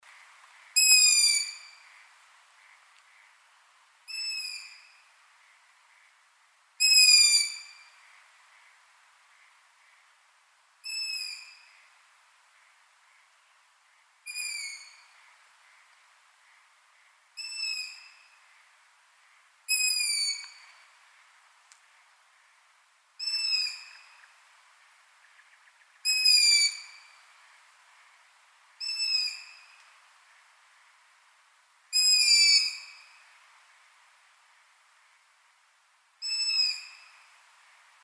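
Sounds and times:
long-eared owl calling: 0:00.8 - 0:03.4, 0:04.1 - 0:05.1, 0:06.8 - 0:10.0, 0:10.8 - 0:11.8, 0:14.2 - 0:15.9, 0:17.4 - 0:18.4, 0:19.7 - 0:20.8, 0:23.2 - 0:24.4, 0:25.2 - 0:27.2, 0:28.8 - 0:29.9, 0:31.9 - 0:33.3, 0:36.2 - 0:37.2.

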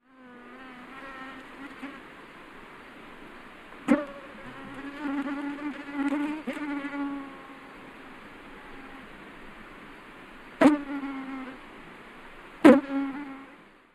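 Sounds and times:
mosquito buzzing: 0:00.0 - 0:02.0, 0:03.9 - 0:07.7, 0:10.6 - 0:11.6, 0:12.6 - 0:13.6.

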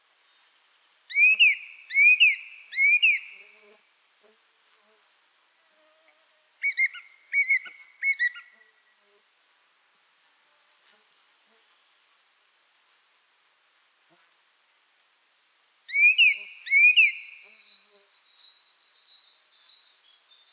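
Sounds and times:
song thrush singing: 0:01.1 - 0:03.4, 0:06.6 - 0:08.6, 0:15.9 - 0:20.5.

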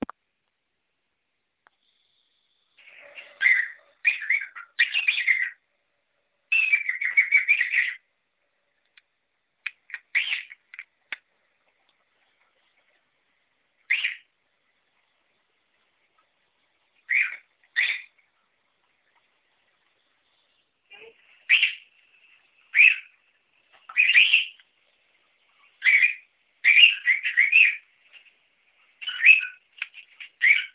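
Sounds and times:
cockatiel parrot calling: 0:02.8 - 0:05.6, 0:06.5 - 0:08.1, 0:10.1 - 0:10.6, 0:13.9 - 0:14.3, 0:17.1 - 0:18.2, 0:21.5 - 0:21.9, 0:22.7 - 0:23.2, 0:23.9 - 0:24.6, 0:25.8 - 0:27.9, 0:29.0 - 0:29.6, 0:30.4 - 0:30.7.

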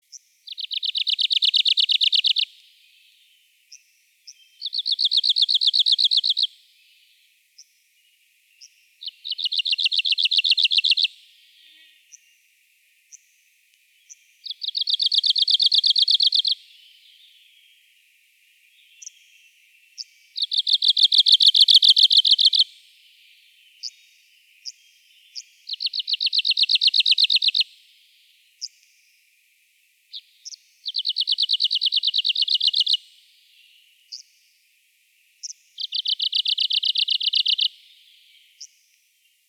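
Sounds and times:
Arctic warbler calling: 0:00.5 - 0:06.5, 0:08.6 - 0:12.3, 0:14.0 - 0:17.8, 0:18.7 - 0:22.7, 0:23.6 - 0:27.7, 0:30.1 - 0:33.0, 0:35.4 - 0:38.8.

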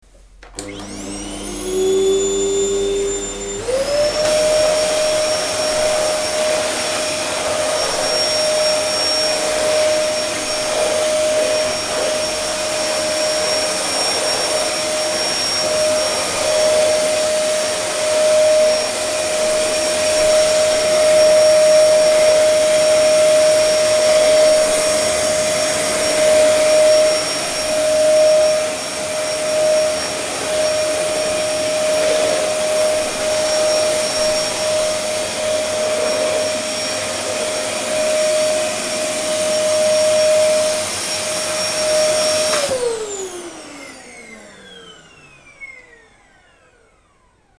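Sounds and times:
vacuum cleaner: 0:00.0 - 0:47.5.

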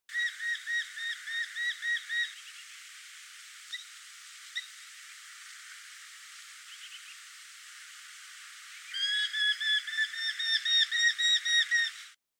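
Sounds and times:
Eurasian hobby calling: 0:00.1 - 0:02.4, 0:08.9 - 0:12.0.

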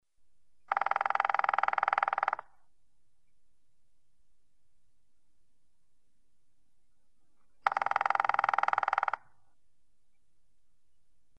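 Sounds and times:
grey-headed woodpecker calling: 0:00.6 - 0:03.4, 0:07.2 - 0:10.3.

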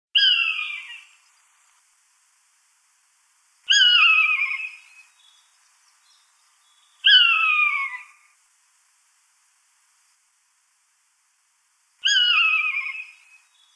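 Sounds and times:
common buzzard calling: 0:03.7 - 0:04.8, 0:07.0 - 0:08.2, 0:12.0 - 0:13.2.

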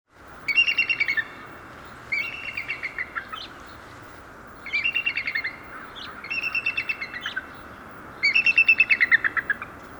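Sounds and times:
bald eagle calling: 0:00.5 - 0:03.6, 0:04.6 - 0:07.6, 0:08.2 - 0:09.7.

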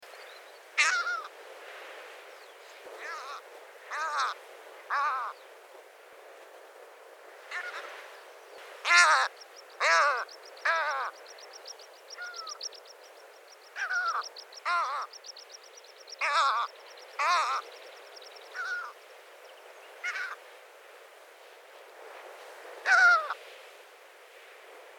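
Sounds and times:
great skua calling: 0:00.8 - 0:01.3, 0:03.0 - 0:05.4, 0:07.5 - 0:08.0, 0:08.8 - 0:19.0, 0:20.0 - 0:20.4, 0:22.8 - 0:23.4.

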